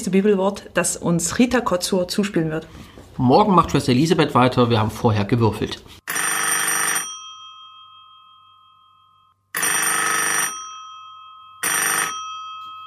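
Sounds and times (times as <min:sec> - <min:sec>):
speech: 0:00.0 - 0:06.0
telephone electric bell ringing for incoming call: 0:06.1 - 0:12.8
faint ringing tone: 0:07.0 - 0:12.8.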